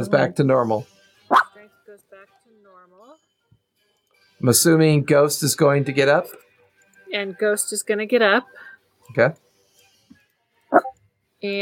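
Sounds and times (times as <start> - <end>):
speech: 0.0 - 0.9, 4.4 - 6.4, 7.1 - 9.4, 10.7 - 11.6
female dog barking: 1.3 - 1.6, 10.7 - 11.0.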